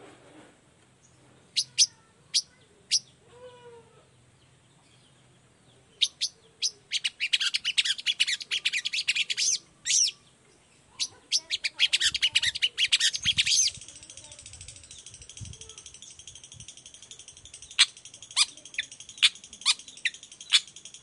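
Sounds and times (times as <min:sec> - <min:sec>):
long-tailed shrike singing in the morning: 0:01.5 - 0:03.2, 0:05.8 - 0:21.0.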